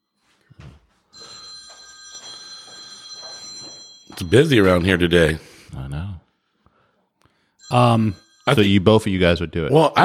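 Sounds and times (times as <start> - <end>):
telephone ringing: 1.1 - 5.4, 7.6 - 9.2
speech: 4.2 - 5.5, 7.7 - 10.0.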